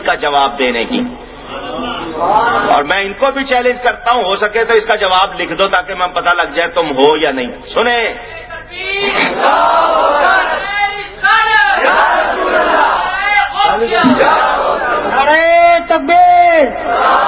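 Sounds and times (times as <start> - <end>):
speech: 0.2 - 1.2, 1.8 - 13.0, 13.6 - 17.2
large crowd chanting religious slogans together: 8.8 - 15.2, 16.8 - 17.2.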